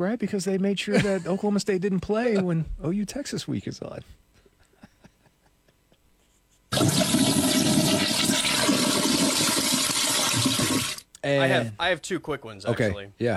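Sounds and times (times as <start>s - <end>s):
speech: 0.0s - 4.3s, 11.2s - 13.3s
toilet flushing: 6.7s - 11.0s.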